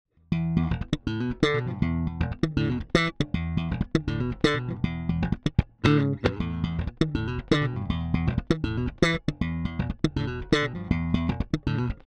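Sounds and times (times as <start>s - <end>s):
passive bass slap: 0.3s - 12.0s.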